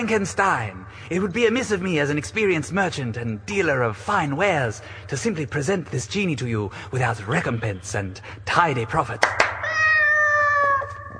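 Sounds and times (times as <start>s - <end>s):
speech: 0.0s - 9.5s
cat meowing: 9.6s - 11.1s.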